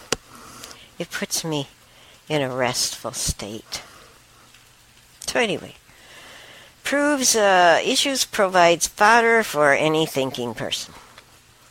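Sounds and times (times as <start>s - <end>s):
steady rain falling outside: 0.3s - 8.8s
speech: 1.0s - 3.9s, 5.3s - 5.8s, 6.9s - 11.0s.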